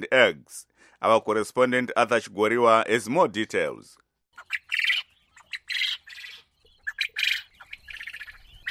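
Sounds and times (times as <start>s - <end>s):
speech: 0.0s - 4.7s
domesticated quail calling in Zimbabwe: 4.4s - 8.6s.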